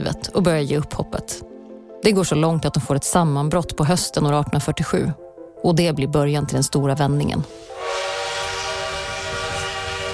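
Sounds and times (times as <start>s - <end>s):
speech: 0.0s - 8.1s
mid-1800s steam locomotive running on rails: 7.5s - 10.1s.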